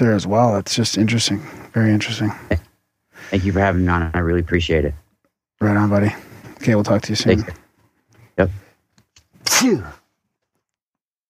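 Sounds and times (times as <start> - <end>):
speech: 0.0 - 5.0, 5.6 - 7.6, 8.4 - 8.6, 9.5 - 10.0
person sneezing: 9.4 - 10.0.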